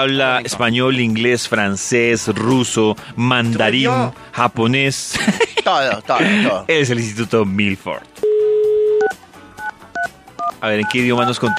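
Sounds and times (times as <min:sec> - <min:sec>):
speech: 0:00.0 - 0:08.3, 0:10.6 - 0:11.5
laughter: 0:05.0 - 0:06.7
telephone dial tone: 0:08.2 - 0:10.5
telephone keypad beeps: 0:08.2 - 0:11.5.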